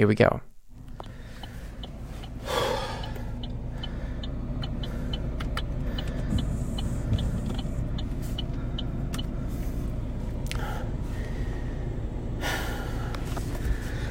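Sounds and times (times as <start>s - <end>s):
quick regular ticking: 0.6s - 12.4s
steady low car engine rumble: 0.6s - 14.0s
person breathing heavily and gasping inside a car: 0.9s - 7.0s, 10.4s - 14.0s.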